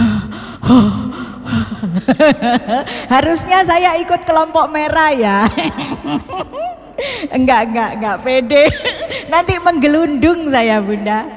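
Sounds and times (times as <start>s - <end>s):
person drawing a deep breath with a voiced gasp: 0.0s - 2.0s
speech: 0.7s - 1.0s, 2.1s - 11.3s
laughter: 1.8s - 3.4s, 5.2s - 6.9s.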